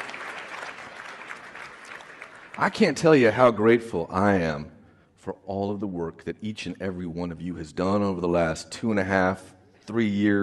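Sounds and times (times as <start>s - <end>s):
audience clapping for themselves: 0.0s - 3.4s
speech: 2.6s - 10.4s.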